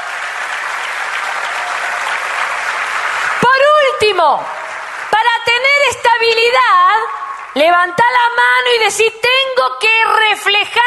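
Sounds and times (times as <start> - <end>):
congregation clapping: 0.0 - 8.4
speech: 4.0 - 4.6, 5.2 - 10.8.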